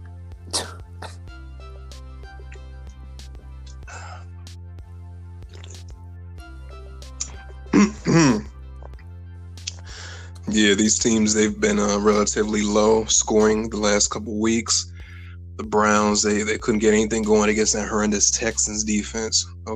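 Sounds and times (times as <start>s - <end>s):
steady low hum: 0.0s - 19.7s
man clearing his throat: 0.5s - 1.2s, 7.8s - 8.5s
speech: 10.6s - 14.9s, 15.7s - 19.7s.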